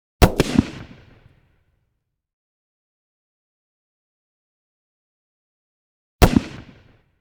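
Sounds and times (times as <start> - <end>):
close .308 gunshot blast: 0.2 - 1.3, 6.2 - 7.0.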